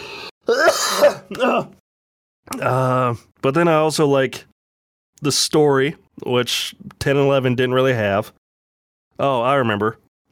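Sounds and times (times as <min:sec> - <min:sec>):
short cough: 0:00.5 - 0:01.7
person clearing throat: 0:00.5 - 0:01.8
speech: 0:00.5 - 0:01.8, 0:02.4 - 0:04.5, 0:05.2 - 0:08.4, 0:09.2 - 0:10.3.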